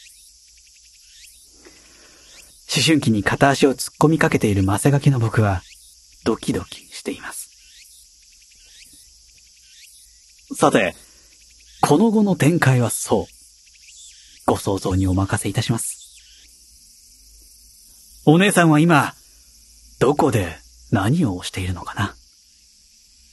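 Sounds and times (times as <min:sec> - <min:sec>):
cicadas droning in a summer chorus: 0:00.0 - 0:23.3
speech: 0:02.8 - 0:07.4, 0:10.6 - 0:11.0, 0:11.8 - 0:13.4, 0:14.5 - 0:15.9, 0:18.3 - 0:19.2, 0:20.0 - 0:22.2.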